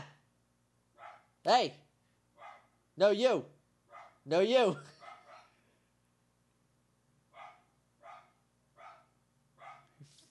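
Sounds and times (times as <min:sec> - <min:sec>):
dog barking: 0:01.0 - 0:01.4, 0:02.4 - 0:02.8, 0:03.9 - 0:04.3, 0:04.9 - 0:05.6, 0:07.3 - 0:10.0
speech: 0:01.5 - 0:01.8, 0:03.0 - 0:03.6, 0:04.2 - 0:05.0.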